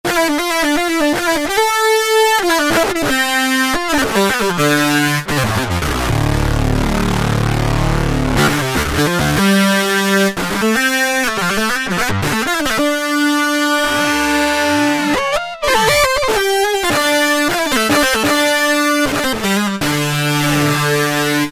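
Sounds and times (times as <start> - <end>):
Kurzweil K2000 synthesizer electric guitar sound: 0.0 - 21.5.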